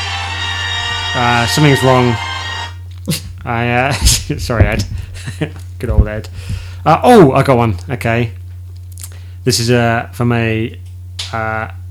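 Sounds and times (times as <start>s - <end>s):
refrigerator brief louder buzzing drone: 0.0s - 6.8s
refrigerator steady low hum: 0.0s - 11.9s
speech: 1.2s - 2.3s, 3.1s - 8.4s, 9.4s - 11.8s.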